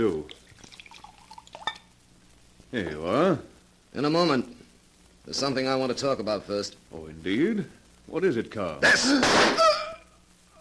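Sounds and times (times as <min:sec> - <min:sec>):
speech: 0:00.0 - 0:00.4, 0:02.7 - 0:04.6, 0:05.3 - 0:09.8
wine glugging and trickling into a glass: 0:00.0 - 0:01.9
bright glassy clink: 0:00.9 - 0:01.9.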